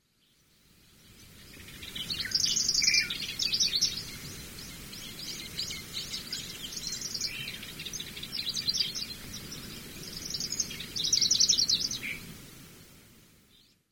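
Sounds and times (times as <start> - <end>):
Pallas's Grasshopper Warbler singing: 1.0 - 12.3.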